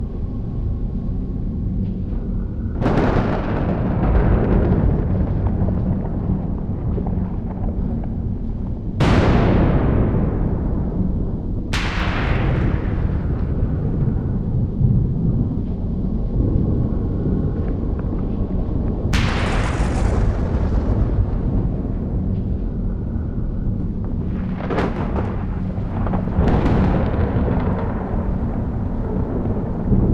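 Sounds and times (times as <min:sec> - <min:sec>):
ambient space storm: 0:00.0 - 0:30.1.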